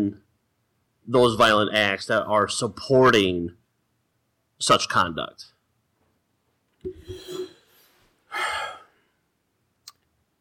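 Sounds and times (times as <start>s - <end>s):
speech: 1.1s - 3.6s, 4.6s - 5.5s
heavy breathing blown straight into a microphone: 6.9s - 9.2s.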